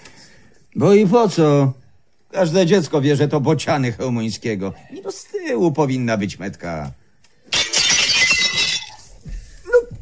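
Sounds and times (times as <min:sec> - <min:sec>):
speech: 0:00.8 - 0:07.0
picture frame glass shattering: 0:07.5 - 0:09.1
falling glass shards tinkling and clinking: 0:07.6 - 0:09.0.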